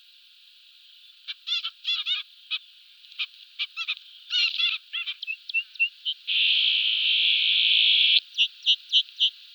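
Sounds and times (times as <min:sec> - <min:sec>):
trumpeter finch calling: 0:01.3 - 0:02.6, 0:03.2 - 0:09.4.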